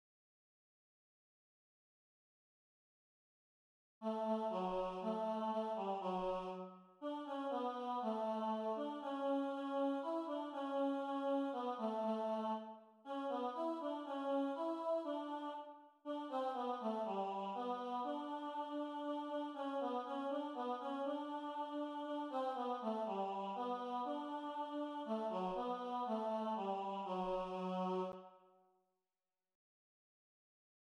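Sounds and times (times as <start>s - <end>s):
tenor singing a lullaby: 4.0s - 28.2s.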